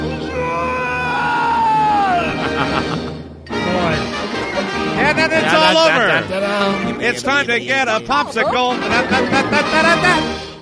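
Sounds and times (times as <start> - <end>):
cartoon character screaming: 0.1 - 2.5
laughter: 2.0 - 3.2, 4.4 - 10.3
speech: 5.8 - 10.5.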